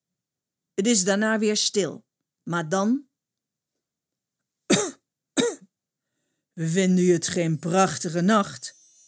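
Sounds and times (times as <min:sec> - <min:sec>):
speech: 0:00.8 - 0:03.1, 0:06.6 - 0:08.8
small polite coughs: 0:04.7 - 0:05.6.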